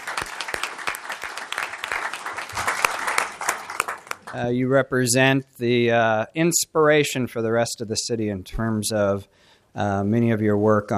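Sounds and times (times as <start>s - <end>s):
room full of people clapping: 0.0s - 4.5s
speech: 4.3s - 10.9s.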